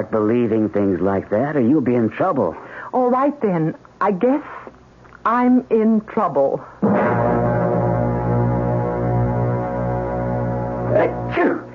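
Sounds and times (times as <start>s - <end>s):
speech: 0.0s - 4.6s, 5.2s - 7.0s
steady sustained droning tone: 6.8s - 11.7s
man sneezing: 10.9s - 11.7s.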